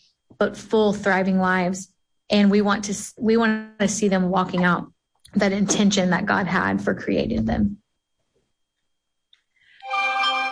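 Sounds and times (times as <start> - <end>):
speech: 0.4 - 7.8
mobile phone ringtone with bell-like electronic melody: 9.8 - 10.5.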